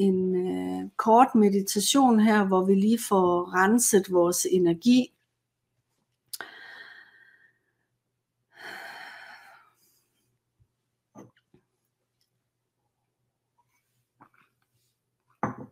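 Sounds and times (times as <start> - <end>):
speech: 0.0 - 0.2, 1.0 - 5.2
sharp inhale during guided meditation: 6.4 - 7.7.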